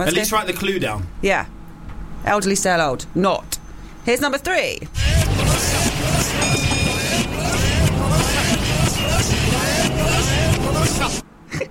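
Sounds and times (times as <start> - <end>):
speech: 0.0 - 1.6, 2.2 - 5.2
bus engine rumble: 4.8 - 11.6
crowd chatter inside a busy bus: 5.0 - 11.2
bus stop-request bell ringing: 6.1 - 8.2.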